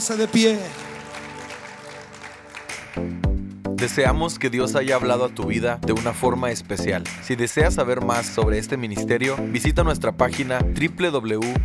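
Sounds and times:
speech: 0.0s - 0.9s, 3.0s - 11.6s
audience applauding: 0.0s - 4.1s
sustained organ-like music: 0.0s - 11.5s.

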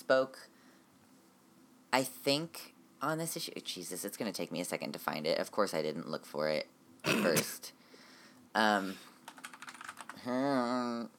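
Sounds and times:
speech: 0.1s - 0.5s, 1.9s - 7.8s, 8.5s - 9.1s, 10.2s - 11.1s
clacky keystrokes on a mechanical keyboard: 9.2s - 10.2s.

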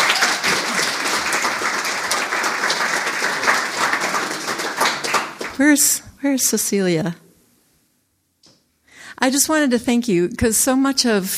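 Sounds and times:
audience clapping: 0.0s - 5.8s
speech: 5.6s - 7.2s, 9.2s - 11.3s.

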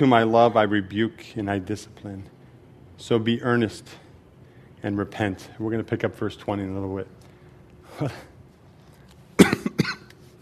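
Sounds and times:
speech: 0.0s - 2.4s, 3.0s - 4.0s, 4.8s - 7.2s, 7.9s - 8.3s
person coughing from allergies in New Hampshire: 9.4s - 10.1s.

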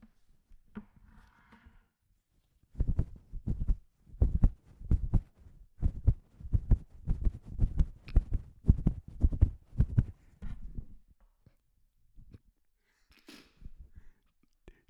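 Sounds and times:
faint rustling of a sweater: 2.7s - 11.1s
foley heartbeat thumping made by tugging a sweater: 2.8s - 10.9s.

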